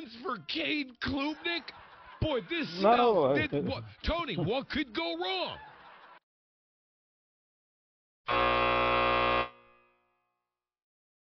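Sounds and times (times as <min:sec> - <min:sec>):
speech: 0:00.2 - 0:05.7, 0:08.3 - 0:08.6
laughter: 0:00.2 - 0:06.2
loud harsh buzzer: 0:08.3 - 0:10.4.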